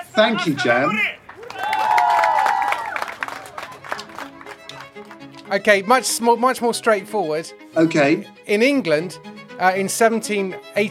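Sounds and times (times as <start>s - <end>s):
voices cheering: 0.0s - 5.1s
speech: 0.2s - 1.2s, 5.5s - 10.8s
small group applauding: 1.2s - 5.7s
loud drawn-out whoop: 1.4s - 3.7s.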